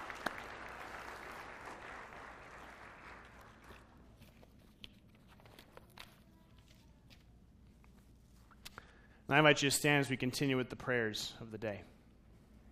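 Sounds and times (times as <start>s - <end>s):
church audience applauding: 0.0s - 4.0s
speech: 9.3s - 12.0s.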